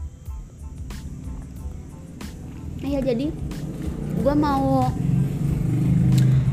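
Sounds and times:
motorcycle engine rumbling while passing by: 1.0s - 6.5s
speech: 2.8s - 5.0s.

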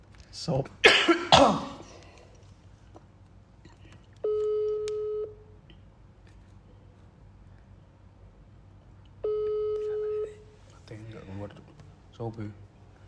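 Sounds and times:
speech: 0.4s - 1.8s, 12.3s - 12.6s
person coughing: 0.8s - 1.9s
telephone line ringback tones while a call connects: 4.2s - 5.3s, 9.2s - 10.4s.

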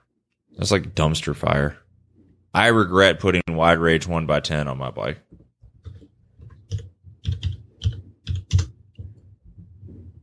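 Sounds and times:
speech: 0.6s - 1.8s, 2.5s - 5.3s
clicking and typing on computer keyboards: 5.8s - 9.1s.

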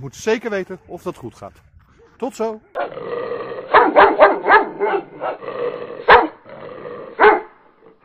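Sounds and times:
speech: 0.0s - 6.2s
dogs barking in a small dog fight: 2.8s - 3.0s, 3.6s - 6.5s, 7.1s - 7.6s
dogs growling and snarling in a scuffle: 2.8s - 8.0s.

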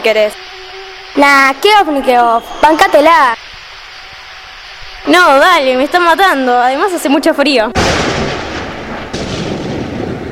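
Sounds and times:
speech: 0.0s - 0.5s, 1.2s - 3.4s, 5.0s - 8.3s
thunder from an approaching storm: 0.0s - 10.2s.

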